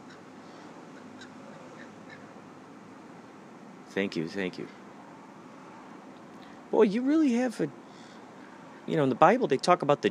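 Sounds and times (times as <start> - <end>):
steady outdoor noise: 0.0 - 10.0
crows cawing: 0.9 - 2.3
speech: 3.9 - 4.8, 6.7 - 7.8, 8.9 - 10.0.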